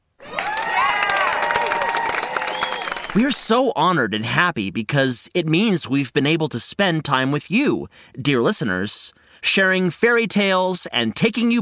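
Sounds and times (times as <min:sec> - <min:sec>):
lively crowd cheering with whoops and shouts: 0:00.2 - 0:03.4
speech: 0:03.1 - 0:11.5.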